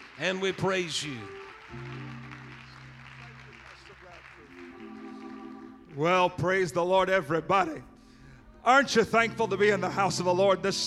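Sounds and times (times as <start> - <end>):
audience clapping at a church service: 0.0 - 7.2
sustained organ-like music: 0.0 - 10.8
speech: 0.2 - 2.0, 6.0 - 7.9, 8.6 - 10.8.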